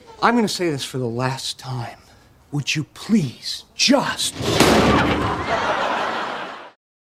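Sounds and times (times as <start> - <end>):
speech: 0.2 - 5.8
loud sharp bang of a real blow to a person's head: 4.4 - 5.5
laughter: 4.8 - 6.8.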